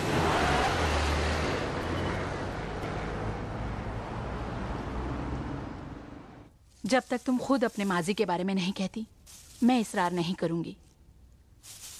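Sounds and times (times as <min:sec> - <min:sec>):
car engine roaring as it pulls away: 0:00.0 - 0:06.5
speech: 0:06.9 - 0:10.8.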